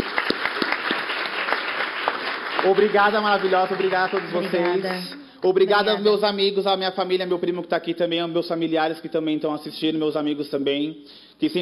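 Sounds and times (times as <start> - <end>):
audience applause at a tribute during a ceremony: 0.0 - 5.2
speech: 2.6 - 11.5.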